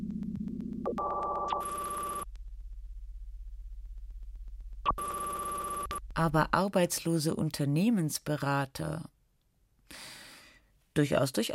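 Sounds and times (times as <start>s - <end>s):
low hum: 0.0s - 6.8s
telephone ringing in an electronic burst: 0.9s - 2.3s, 4.9s - 6.0s
speech: 6.2s - 9.1s, 11.0s - 11.5s.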